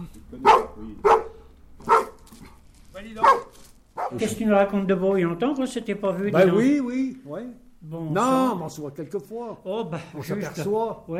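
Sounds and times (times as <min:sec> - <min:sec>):
speech: 0:00.0 - 0:01.1, 0:03.0 - 0:03.4, 0:04.1 - 0:11.1
house dog barking: 0:00.4 - 0:02.2, 0:03.2 - 0:04.2.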